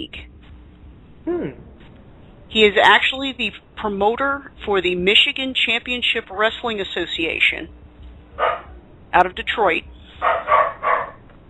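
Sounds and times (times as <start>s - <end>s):
speech: 0.0s - 0.3s, 1.3s - 1.7s, 2.5s - 7.8s, 8.4s - 10.6s
dog barking or yelping: 8.4s - 8.7s, 10.2s - 11.2s.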